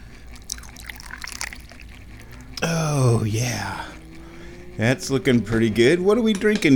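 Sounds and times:
Jin Jun Mei tea pouring into a teacup: 0.4 - 1.9
speech: 2.6 - 3.9, 4.8 - 6.7.

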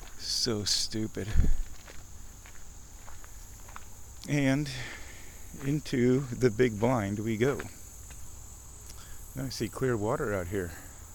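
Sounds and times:
steady hiss: 0.0 - 11.1
speech: 0.4 - 1.6, 4.3 - 7.8, 9.4 - 10.8
footsteps of someone walking past a wall to a bird blind: 1.2 - 9.0.

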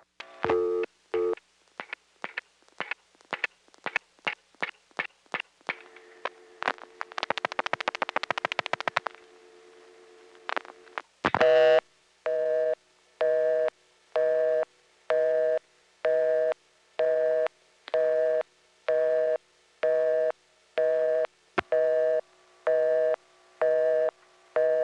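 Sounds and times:
noise: 0.0 - 24.8
rapid tone bursts: 5.7 - 9.2
telephone busy signal after a hang-up: 11.4 - 24.8.

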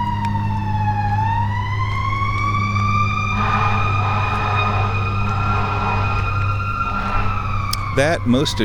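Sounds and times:
fire truck siren wailing: 0.0 - 8.6
steady low engine rumble: 0.0 - 8.6
speech: 8.0 - 8.6.

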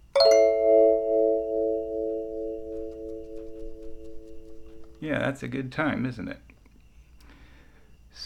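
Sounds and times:
pentatonic sansula chord with wah-wah effect made by lifting the instrument: 0.2 - 5.0
speech: 5.0 - 6.5.

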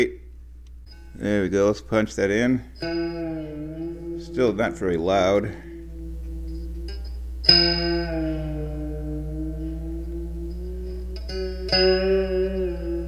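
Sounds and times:
steady low amp hum: 0.0 - 13.0
speech: 1.2 - 5.7, 7.4 - 8.4, 11.7 - 12.6
dan bau monochord played through an amplifier: 2.6 - 13.0.

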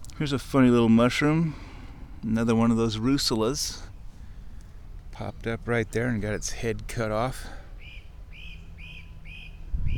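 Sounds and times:
low rumble: 0.0 - 9.9
speech: 0.2 - 3.9, 5.2 - 7.6
bird whistling in woodland: 7.8 - 9.9.

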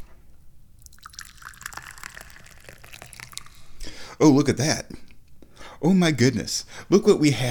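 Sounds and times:
tea pouring into a cup: 0.8 - 3.9
speech: 4.2 - 5.0, 5.8 - 7.4.

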